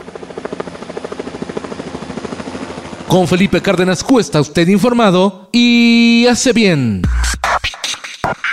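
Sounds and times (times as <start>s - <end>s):
helicopter flying with rotor thumping over engine whine: 0.0s - 6.2s
speech: 3.1s - 7.4s.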